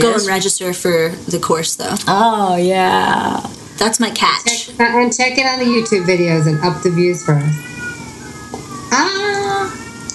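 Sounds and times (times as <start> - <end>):
speech: 0.0 - 7.7, 8.9 - 9.4
steady low hum: 0.0 - 10.1
cat meowing and caterwauling: 5.6 - 10.1.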